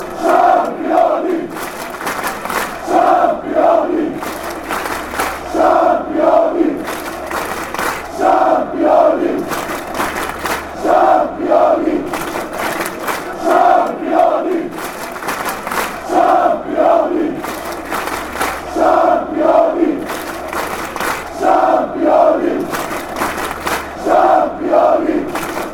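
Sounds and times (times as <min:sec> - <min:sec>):
chant: 0:00.0 - 0:25.7.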